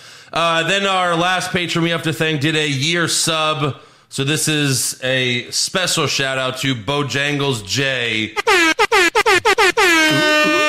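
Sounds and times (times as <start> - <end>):
speech: 0.3 - 8.6
loud blaring air horn bursts and sustained blast: 8.4 - 10.6.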